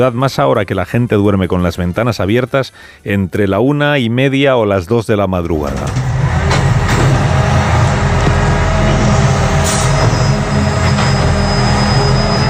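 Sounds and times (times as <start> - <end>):
speech: 0.0 - 6.1
garbage collection truck emptying a cardboard recycling container on a city street: 5.6 - 12.4
steady thin whine: 5.7 - 12.4.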